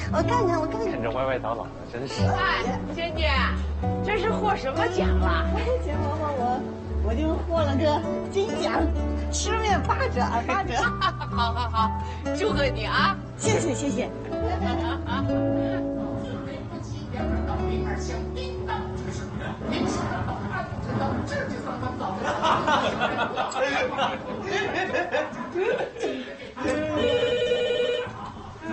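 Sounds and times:
lively chatter and voices: 0:00.0 - 0:28.7
speech: 0:00.1 - 0:15.6
laughter: 0:10.4 - 0:12.0, 0:13.5 - 0:15.9, 0:18.7 - 0:27.2, 0:27.8 - 0:28.7
telephone ringing with a repeating electronic tone: 0:26.9 - 0:28.2.

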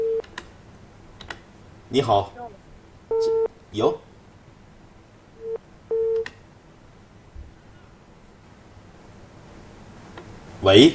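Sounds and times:
telephone busy tone after a caller hangs up: 0:00.0 - 0:00.2, 0:03.1 - 0:03.5, 0:05.4 - 0:06.2
faint hiss of telephone line noise: 0:00.0 - 0:10.9
speech: 0:01.9 - 0:02.4, 0:03.2 - 0:04.1, 0:10.6 - 0:10.9.

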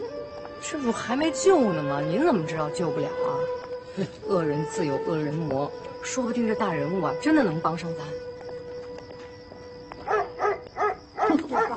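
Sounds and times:
speech: 0:00.6 - 0:08.3
household dog barking: 0:10.1 - 0:11.7.

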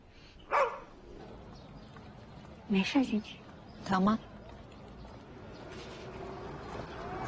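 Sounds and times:
dog in a new environment giving a short sharp bark: 0:00.5 - 0:00.9
speech: 0:02.7 - 0:04.3.

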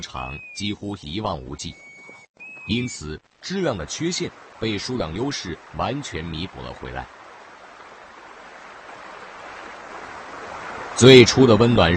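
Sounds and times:
speech: 0:00.0 - 0:01.9, 0:02.7 - 0:07.2, 0:11.0 - 0:11.9
stream rushing in the spring thaw: 0:02.5 - 0:11.9.

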